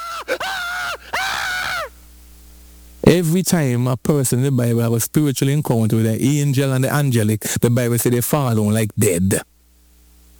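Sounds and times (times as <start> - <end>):
man imitating a frightened scream: 0.0 - 1.9
speech: 3.1 - 9.5.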